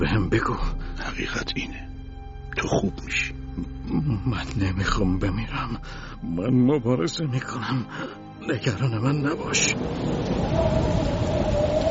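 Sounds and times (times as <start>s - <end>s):
speech: 0.0s - 2.0s, 2.6s - 11.6s
heavy rain with hail: 9.7s - 11.9s
low thunder rumble: 9.8s - 11.9s.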